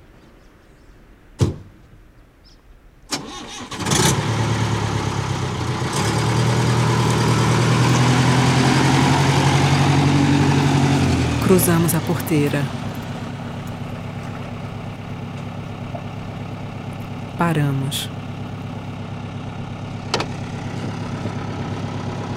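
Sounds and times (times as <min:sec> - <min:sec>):
truck engine idling at a gate on a dirt road: 0:03.2 - 0:22.3
speech: 0:11.5 - 0:12.8, 0:17.4 - 0:18.2
sharp knocks: 0:20.1 - 0:20.4.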